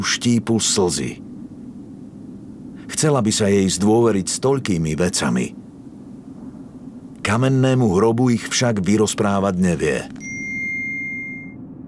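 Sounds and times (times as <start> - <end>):
speech: 0.0 - 1.3, 3.0 - 5.7, 7.3 - 10.3
low ambient hum: 0.0 - 11.8
electronic message notification ding from a phone: 10.2 - 11.6.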